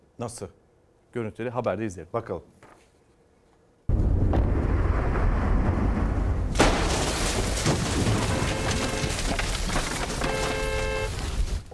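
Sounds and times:
speech: 0.2 - 0.6, 1.2 - 2.6
thunder crack from lightning striking a tree in Australia: 3.9 - 10.4
continuous heavy roar of rain: 6.6 - 11.3.

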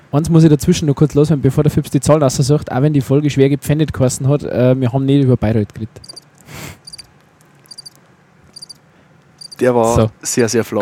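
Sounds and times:
speech: 0.1 - 6.8, 9.6 - 10.8
crickets chirping: 6.0 - 9.6
hiss: 6.0 - 10.8.

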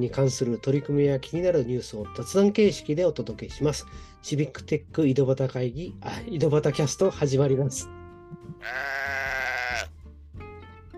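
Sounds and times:
speech: 0.0 - 9.2
sheep bleating: 8.6 - 9.9.

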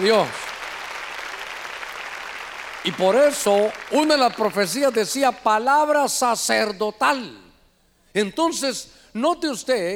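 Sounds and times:
speech: 0.0 - 0.4, 2.8 - 7.4, 8.2 - 9.9
large crowd applauding loudly: 0.0 - 5.0.

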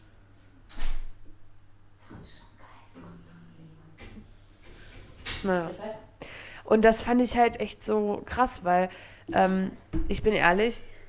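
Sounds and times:
low steady hum: 0.0 - 11.0
door shutting with a loud clunk: 0.7 - 1.2
speech: 5.4 - 6.0, 6.7 - 10.9.

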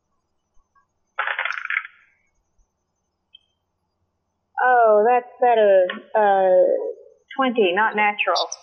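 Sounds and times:
dice rattling and clattering across a hard surface: 1.2 - 2.0
speech: 5.0 - 8.6.

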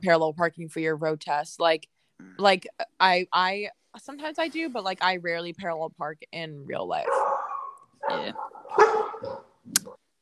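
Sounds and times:
speech: 0.0 - 7.3, 8.0 - 9.8
dog barking: 7.1 - 9.4.

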